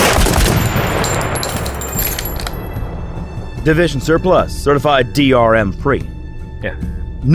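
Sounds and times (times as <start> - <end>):
warning shot gunfire by guards: 0.0 - 1.9
speech: 3.6 - 7.3.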